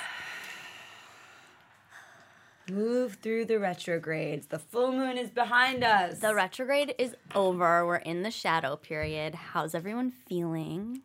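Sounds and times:
group taking a deep breath: 0.0s - 2.7s
speech: 2.7s - 11.0s.

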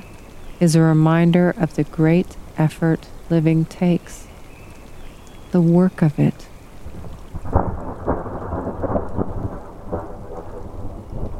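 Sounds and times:
rain hiss: 0.0s - 11.3s
speech: 0.6s - 4.3s, 5.5s - 6.5s
deep thunder rumbling and rolling: 6.8s - 11.3s.

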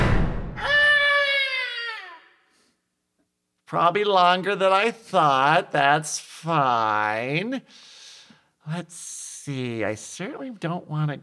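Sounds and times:
short low boom: 0.0s - 0.6s
loud drawn-out wavering scream: 0.5s - 2.4s
speech: 3.7s - 8.0s, 8.7s - 11.2s.

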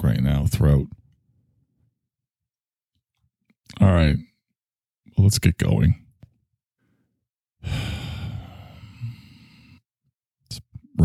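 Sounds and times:
speech: 0.1s - 1.0s, 3.8s - 4.3s, 5.2s - 6.0s
deep yoga breathing exhale: 7.6s - 9.8s.

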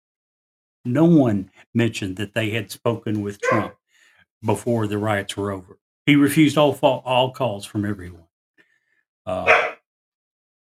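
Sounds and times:
speech: 0.8s - 3.8s, 4.4s - 8.2s, 9.3s - 9.7s
dog barking: 3.4s - 3.8s, 9.4s - 9.8s.

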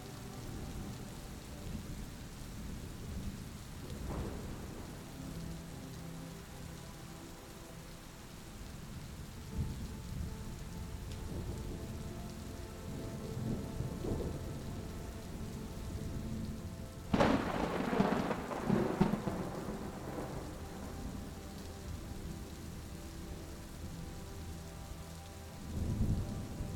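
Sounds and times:
constant hiss of rain: 0.0s - 26.7s
soft sustained music tones: 0.0s - 26.7s
deep thunder rumbling: 2.6s - 5.5s, 9.5s - 23.4s
louder sharp thunderclap with crackling echoes: 17.1s - 20.3s.

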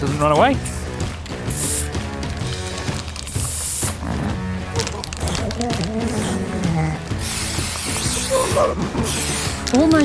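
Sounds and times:
music: 0.0s - 10.0s
speech: 0.1s - 0.8s, 8.5s - 10.0s
aerosol marker spray hissing on seal pups: 1.4s - 2.1s, 3.2s - 4.0s, 7.1s - 9.8s.

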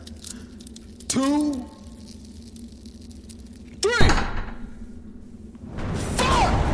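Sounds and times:
steady low hum: 0.0s - 6.7s
speech: 1.2s - 1.8s
door being kicked down: 4.0s - 4.7s.

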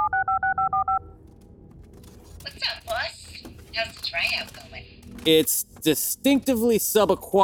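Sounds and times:
touch-tone phone dialing beeps: 0.0s - 1.2s
speech: 3.8s - 7.4s.

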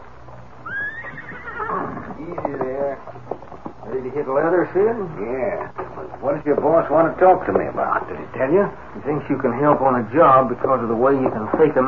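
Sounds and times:
horse neighing outside a cafe: 0.6s - 2.7s
speech: 2.2s - 3.1s, 4.0s - 11.8s.

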